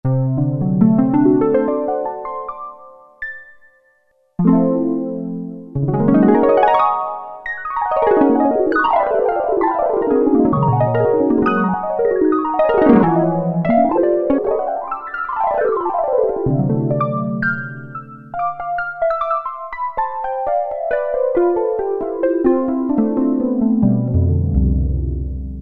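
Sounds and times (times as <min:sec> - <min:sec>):
harp on Roland MKS-50 synthesizer: 0:00.1 - 0:02.8, 0:04.4 - 0:25.6.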